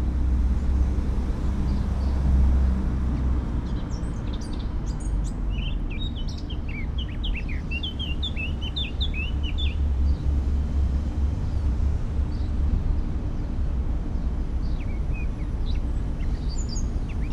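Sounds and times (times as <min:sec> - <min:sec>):
heavy low droning noise: 0:00.0 - 0:17.3
Eurasian blackcap Sylvia atricapilla singing slurred whistles: 0:04.2 - 0:09.8, 0:14.8 - 0:17.3.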